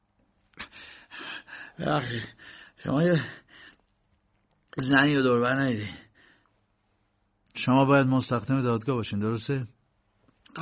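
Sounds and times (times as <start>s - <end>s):
man panting heavily coming up the stairs: 0.6s - 3.8s
speech: 1.8s - 3.4s, 4.8s - 6.1s, 7.6s - 9.8s.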